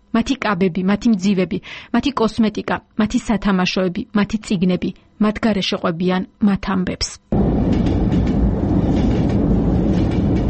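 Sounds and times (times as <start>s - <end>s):
speech: 0.2s - 7.9s
train running on rails: 7.3s - 10.4s.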